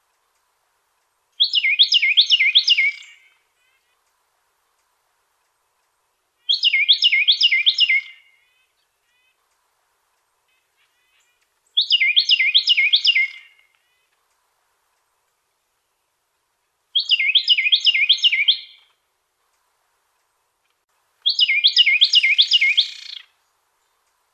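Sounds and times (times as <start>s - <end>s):
Carolina wren singing repeated two-part phrases: 1.3s - 4.1s, 5.4s - 14.2s, 16.9s - 18.9s, 21.2s - 24.2s.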